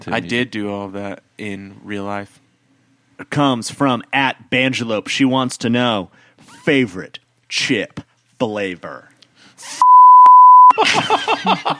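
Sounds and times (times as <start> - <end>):
speech: 0.0 - 2.4, 3.2 - 9.8, 10.8 - 11.7
loud steady censor beep: 9.8 - 10.7
laughter: 10.7 - 11.7.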